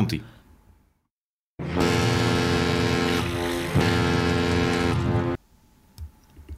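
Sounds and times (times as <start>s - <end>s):
speech: 0.0s - 0.3s
boat engine drone: 1.6s - 5.4s.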